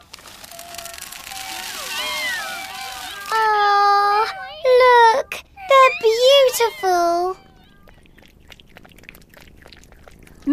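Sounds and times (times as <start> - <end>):
hungry cats and kittens eating: 0.0 - 10.5
cat meowing: 0.4 - 8.4.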